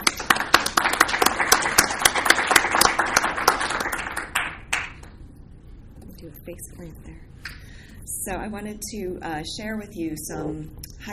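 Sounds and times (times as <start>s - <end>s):
audience applauding: 0.0s - 5.1s
speech: 6.6s - 7.3s, 8.2s - 11.1s.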